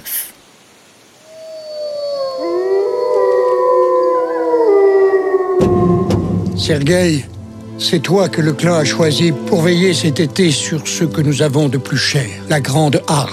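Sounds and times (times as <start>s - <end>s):
several wolves howling in chorus: 1.3s - 7.8s
rustling thump: 5.6s - 7.7s
speech: 6.7s - 13.3s.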